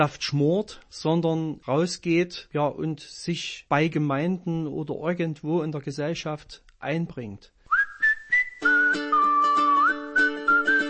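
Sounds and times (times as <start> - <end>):
speech: 0.0 - 7.6
whistled melody: 7.7 - 10.8
musical accompaniment: 8.5 - 10.8.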